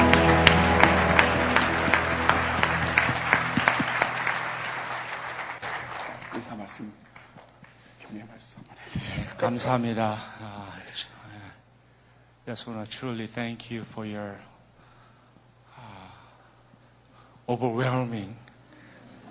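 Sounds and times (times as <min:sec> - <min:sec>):
church audience applause: 0:00.0 - 0:07.4
speech: 0:09.5 - 0:10.4, 0:12.5 - 0:14.5, 0:17.5 - 0:18.4.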